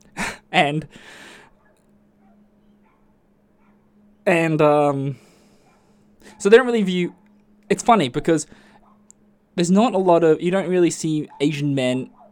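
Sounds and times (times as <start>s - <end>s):
dog breathy huff: 0.0s - 1.6s, 5.1s - 6.4s, 8.5s - 8.8s
faint steady hum: 0.0s - 12.3s
speech: 0.6s - 1.3s, 4.2s - 5.2s, 6.4s - 8.7s, 9.6s - 12.2s
dog barking: 1.6s - 3.9s, 5.6s - 7.3s, 8.8s - 9.0s, 11.3s - 11.5s, 12.1s - 12.3s.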